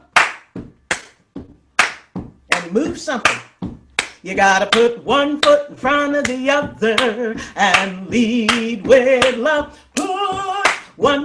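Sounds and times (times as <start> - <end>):
hands clapping along to a closing song at a church service: 0.0 - 5.6, 7.0 - 11.0
speech: 2.6 - 3.4, 4.2 - 10.1, 11.0 - 11.2.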